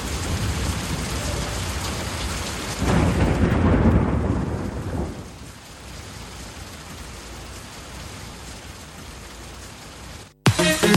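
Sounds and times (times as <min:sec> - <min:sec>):
deep roll of thunder rumbling: 0:00.0 - 0:08.0
steady heavy rain: 0:00.0 - 0:10.9.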